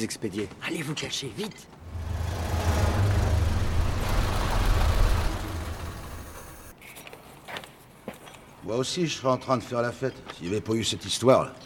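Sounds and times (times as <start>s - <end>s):
speech: 0.0s - 2.0s, 8.7s - 11.6s
police car engine idling: 1.8s - 6.7s.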